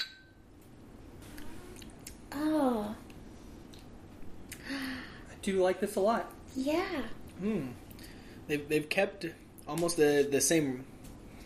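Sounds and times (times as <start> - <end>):
beer glasses clinking in a toast: 0.0 - 0.4
soft low room noise: 0.0 - 11.4
speech: 5.4 - 7.8, 8.5 - 10.9.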